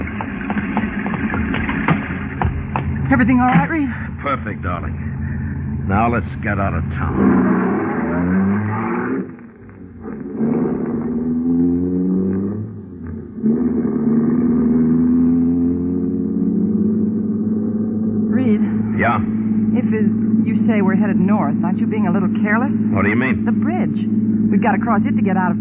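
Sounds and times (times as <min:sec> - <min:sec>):
car engine droning as the vehicle drives off: 0:00.0 - 0:25.6
speech: 0:03.1 - 0:05.1, 0:05.9 - 0:07.8, 0:21.0 - 0:25.6.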